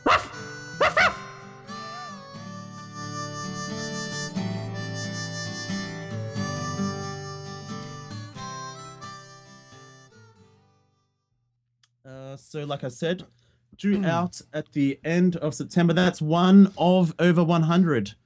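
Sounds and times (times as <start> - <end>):
dog barking: 0.0 - 1.2
speech: 12.5 - 18.2.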